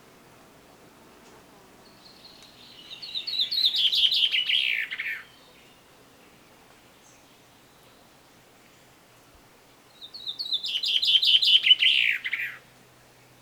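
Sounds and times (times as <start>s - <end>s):
common chaffinch Fringilla coelebs song: 1.8s - 8.0s, 9.9s - 12.6s.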